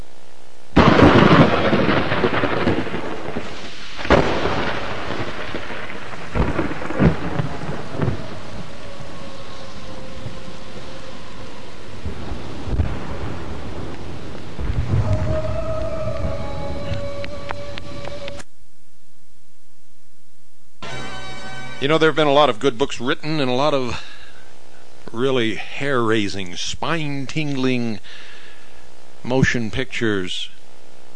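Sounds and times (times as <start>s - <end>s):
heavy rain: 0.8s - 18.4s
thunder: 0.8s - 18.4s
speech: 21.8s - 24.1s, 25.1s - 28.3s, 29.2s - 30.5s.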